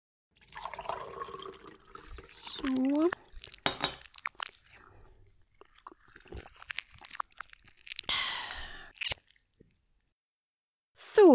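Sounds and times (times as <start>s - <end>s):
coffee being poured into a cup: 0.4s - 8.1s
speech: 2.6s - 3.2s.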